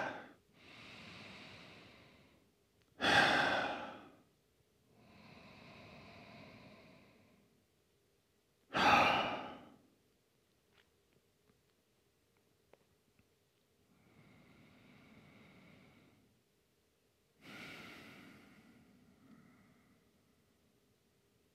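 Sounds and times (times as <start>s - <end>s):
deep breathing during a yoga class: 0.0s - 4.3s, 4.9s - 7.5s, 8.7s - 9.9s, 13.9s - 16.4s, 17.4s - 20.7s.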